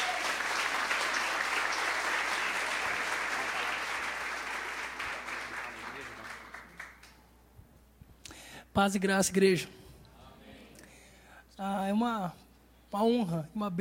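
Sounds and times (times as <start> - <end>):
church congregation applauding: 0.0 - 7.2
speech: 8.8 - 9.8, 11.6 - 13.7.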